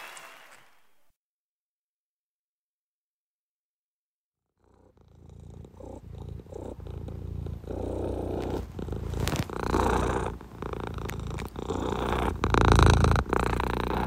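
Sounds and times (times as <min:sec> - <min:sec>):
cat purring: 0:04.5 - 0:14.0.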